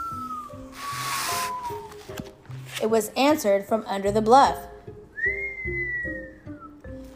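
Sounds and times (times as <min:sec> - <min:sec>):
clear low human whistle: 0:00.0 - 0:02.0, 0:05.2 - 0:07.0
speech: 0:02.8 - 0:04.7.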